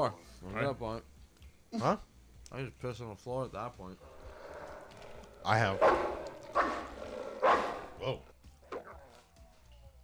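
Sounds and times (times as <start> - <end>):
speech: 0.0 - 1.1, 1.7 - 4.2, 5.4 - 6.7, 8.0 - 8.3
dog whimpering in a bathroom: 4.0 - 9.2.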